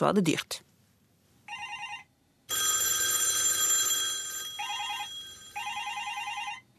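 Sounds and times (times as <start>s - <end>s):
speech: 0.0s - 0.7s
old-fashioned analog landline telephone bell ringing: 1.5s - 6.7s.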